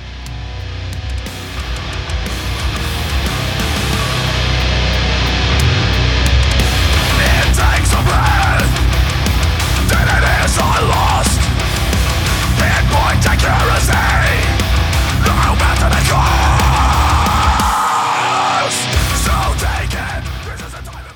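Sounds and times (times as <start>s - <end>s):
distorted guitars: 0.0s - 21.1s
groovy Norwegian-Swedish death metal from a band's first EP: 0.0s - 21.1s
growled vocals: 6.6s - 21.1s.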